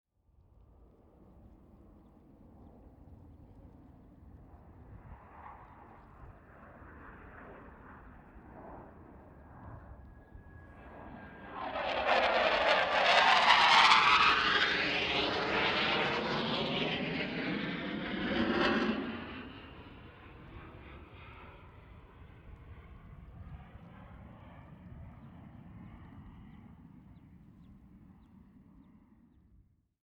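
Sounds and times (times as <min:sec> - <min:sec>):
jet fighter flyby with long approach and long tail out: 0:04.4 - 0:28.1.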